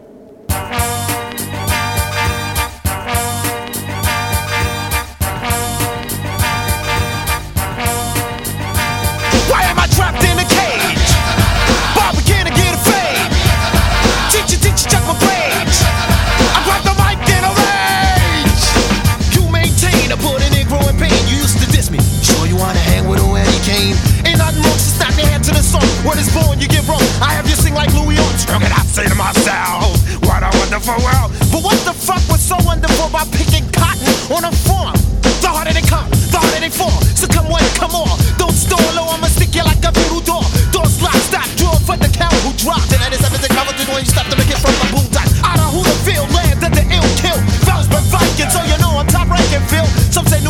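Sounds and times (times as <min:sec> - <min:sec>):
1990s hip-hop track with bass-heavy beat: 0:00.5 - 0:50.4
rapped vocals over a hip-hop groove: 0:09.2 - 0:50.4.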